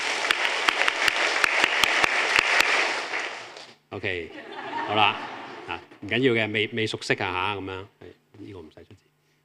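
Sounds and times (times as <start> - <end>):
crowd clapping together in a patterned rhythm: 0.0 - 3.8
speech: 4.0 - 9.0
laughter: 4.3 - 6.0.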